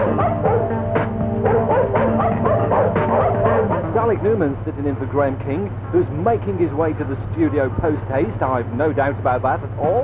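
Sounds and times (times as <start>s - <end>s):
dog barking in short yaps: 0.0s - 0.8s, 1.4s - 3.9s
continuous humming musical background: 0.0s - 10.0s
speech: 4.2s - 10.0s.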